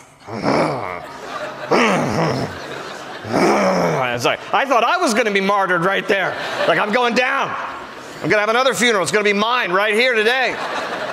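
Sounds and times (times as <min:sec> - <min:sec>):
voice imitating the growling and murmuring of a funeral audience: 0:00.0 - 0:04.4
laughter: 0:00.0 - 0:04.7, 0:05.8 - 0:08.7, 0:10.2 - 0:11.1
speech: 0:00.2 - 0:00.6, 0:01.7 - 0:02.6, 0:04.2 - 0:10.8.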